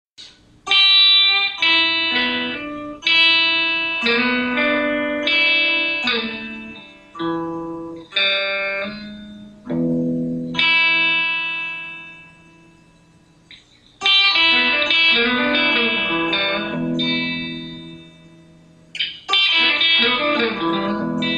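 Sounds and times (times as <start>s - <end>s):
E blues scale lick: 0.2s - 21.3s.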